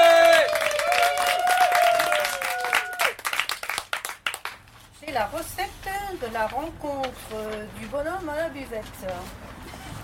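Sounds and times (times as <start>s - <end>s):
crowd applause: 0.0s - 4.5s
speech: 5.2s - 9.4s.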